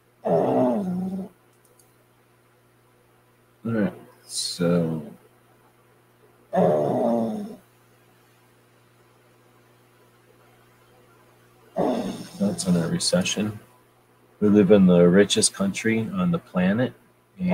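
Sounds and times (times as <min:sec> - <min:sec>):
dog snoring: 0:00.3 - 0:01.3, 0:06.6 - 0:07.6, 0:11.8 - 0:12.9
speech: 0:03.6 - 0:05.1, 0:12.6 - 0:13.7, 0:14.4 - 0:17.5.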